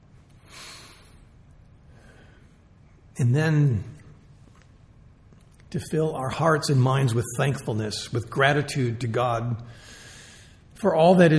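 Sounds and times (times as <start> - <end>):
deep breath in: 0.4 - 1.2, 9.7 - 10.6
speech: 3.2 - 3.9, 5.7 - 10.0, 10.8 - 11.3.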